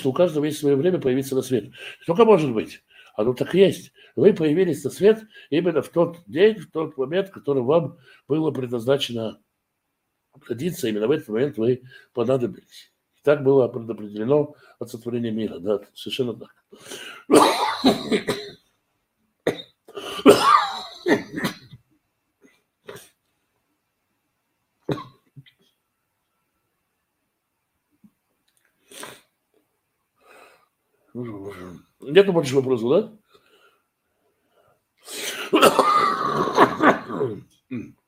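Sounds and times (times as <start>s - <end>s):
speech: 0.0s - 9.4s, 10.4s - 18.5s, 20.2s - 21.5s, 31.2s - 33.2s, 35.1s - 38.0s
person coughing: 17.0s - 18.6s, 19.5s - 21.8s, 22.9s - 23.2s, 24.9s - 25.3s, 35.1s - 38.0s.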